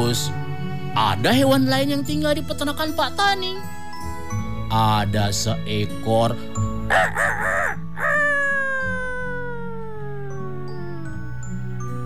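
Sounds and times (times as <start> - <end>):
speech: 0.1 - 0.4, 1.0 - 3.8, 4.7 - 7.5
rooster on a farm crowing: 6.9 - 9.9.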